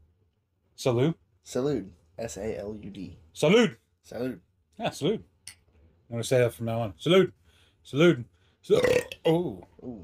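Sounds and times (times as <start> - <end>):
speech: 0.8 - 10.0
deep belch: 8.7 - 9.4.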